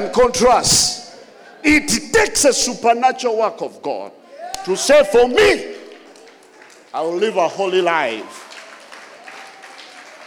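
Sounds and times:
speech: 0.0s - 1.0s, 1.6s - 5.7s, 6.9s - 8.4s
audience clapping: 5.7s - 10.2s.

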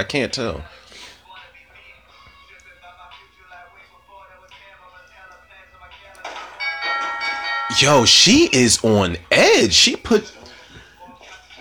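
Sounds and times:
speech: 0.0s - 0.8s, 7.7s - 10.4s
bright doorbell chime: 6.6s - 9.0s
voices: 7.7s - 10.9s.

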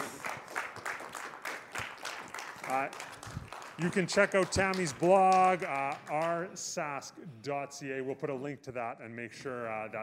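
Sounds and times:
small group applauding: 0.0s - 6.7s
speech: 2.7s - 3.1s, 3.8s - 10.0s.

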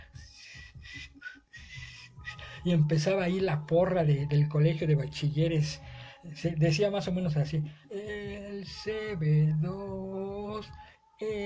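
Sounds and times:
person imitating a crowd whistling with breathy hissing bursts: 0.0s - 3.9s
speech: 2.6s - 11.4s.

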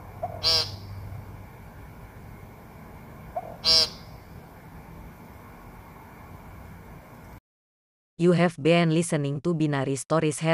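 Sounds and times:
woodcock giving harsh buzzy calls: 0.2s - 1.1s, 3.3s - 4.4s
speech: 8.2s - 10.5s.

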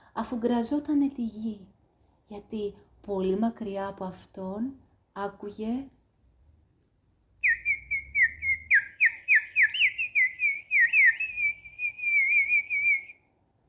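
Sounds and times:
speech: 0.2s - 6.0s
birdsong-like whistling and warbling trill: 7.4s - 13.2s.

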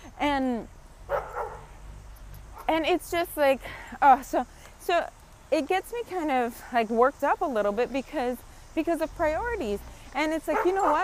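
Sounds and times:
speech: 0.2s - 0.8s, 2.7s - 11.0s
dog barking: 1.1s - 1.7s, 10.5s - 11.0s.

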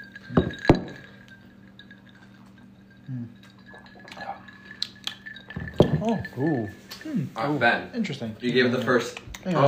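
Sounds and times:
bright glass clinks in a toast: 0.0s - 9.0s
speech: 6.0s - 9.6s.

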